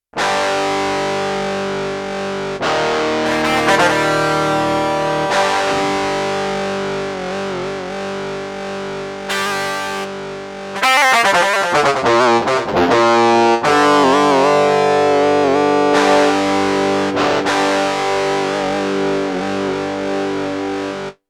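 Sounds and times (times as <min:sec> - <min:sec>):
power guitar: 0:00.2 - 0:21.2.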